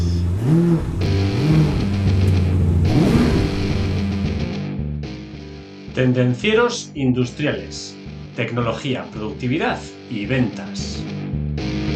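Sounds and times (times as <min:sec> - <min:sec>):
car engine starting and revving: 0:00.0 - 0:04.7
speech: 0:06.0 - 0:11.2.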